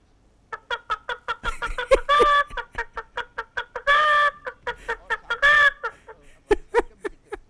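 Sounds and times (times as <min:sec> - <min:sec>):
person imitating a hen's cackle after laying an egg: 0:00.7 - 0:03.0, 0:03.8 - 0:06.4.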